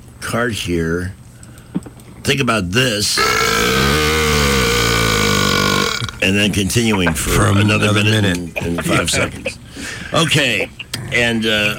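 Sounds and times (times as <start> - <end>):
speech: 0.3 - 1.2, 2.3 - 4.0, 6.2 - 11.7
long loud low rough burp: 3.2 - 6.3
laughter: 6.7 - 10.9.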